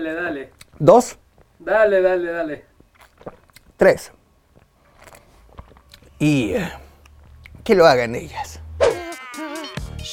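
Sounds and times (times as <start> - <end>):
speech: 0.0 - 4.2, 6.2 - 6.8, 7.6 - 8.6
person sipping a mojito cocktail: 2.9 - 3.7, 4.9 - 6.1.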